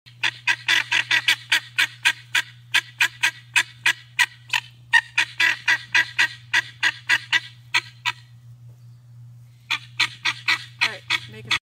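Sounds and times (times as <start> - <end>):
helmeted guineafowl calling: 0.1 - 8.4, 9.5 - 11.6
steady low hum: 0.1 - 11.6.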